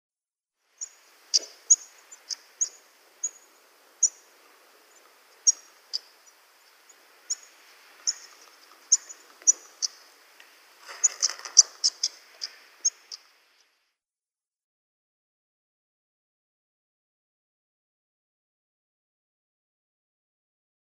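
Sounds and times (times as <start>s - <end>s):
Canary Island Stonechat calls: 0.8s - 10.2s, 10.9s - 13.3s.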